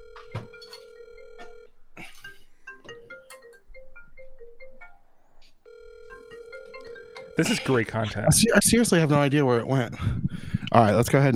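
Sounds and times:
computer call ringtone: 0.0 - 1.7, 5.6 - 8.1
speech: 7.4 - 11.3.

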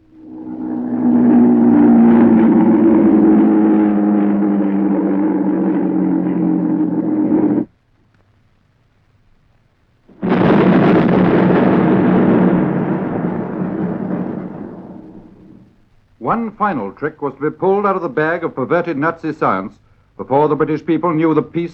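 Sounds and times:
V-1 flying bomb engine droning over London: 0.0 - 7.7, 10.2 - 15.7
V-1 flying bomb warhead exploding over London: 0.0 - 7.7, 10.1 - 15.8
speech: 16.6 - 21.7.

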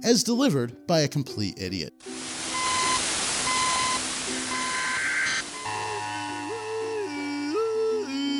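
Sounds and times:
speech: 0.0 - 2.1
loud hissing static: 2.0 - 7.4
sustained wavering electronic emergency alarm tone: 2.4 - 7.9
emergency broadcast alarm beeps: 2.5 - 6.8.

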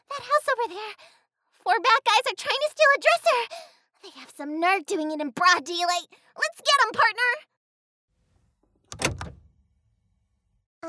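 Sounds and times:
speech: 0.2 - 7.5
car door locks actuating by mistake with a clunk and whir: 8.8 - 9.5.

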